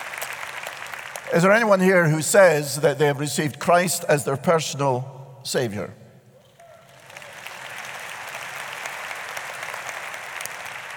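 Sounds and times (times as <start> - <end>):
large crowd applauding at a church service: 0.0 - 1.3, 6.4 - 10.9
speech: 1.3 - 6.0.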